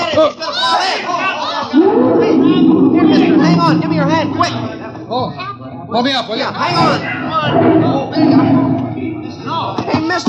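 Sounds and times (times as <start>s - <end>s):
crowd chattering at a zoo: 0.0s - 10.2s
speech: 0.2s - 0.6s, 1.7s - 8.7s, 9.5s - 10.2s
person's voice rising above crowd: 1.7s - 5.4s.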